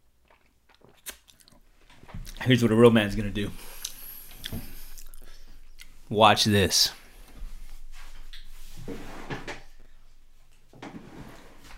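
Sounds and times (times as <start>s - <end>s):
speech: 2.4s - 3.7s, 6.1s - 7.0s
wooden sock drawer sliding open and shut: 8.8s - 9.7s, 10.8s - 11.7s.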